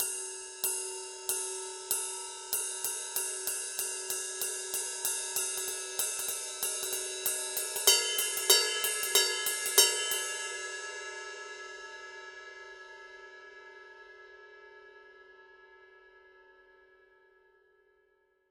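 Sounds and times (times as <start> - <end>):
Paiste PST 5 Rock Ride 20 cymbal pattern: 0.0 - 11.5.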